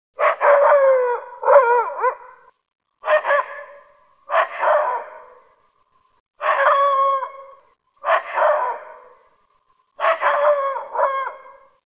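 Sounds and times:
dog barking: 0.2 - 2.4, 3.0 - 5.4, 6.4 - 6.9, 8.0 - 9.2, 10.0 - 11.4.

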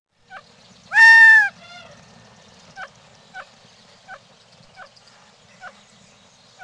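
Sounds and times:
Gambel's Quail calling: 0.3 - 2.0, 2.7 - 5.0.

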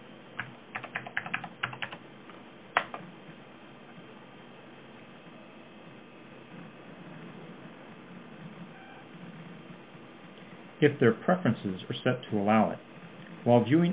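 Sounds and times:
steady low hum: 0.0 - 13.9
typing on a computer keyboard: 0.4 - 2.0, 2.8 - 3.0
speech: 10.8 - 13.9.

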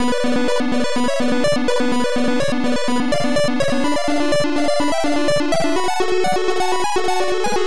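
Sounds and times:
chiptune music with false pitches: 0.0 - 7.6.

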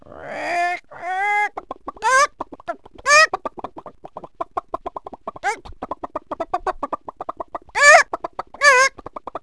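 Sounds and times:
animal gobbling: 0.2 - 3.9, 5.0 - 9.1.

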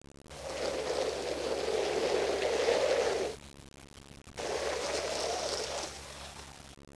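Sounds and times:
fire hose being dragged: 0.3 - 3.4, 4.4 - 6.4.

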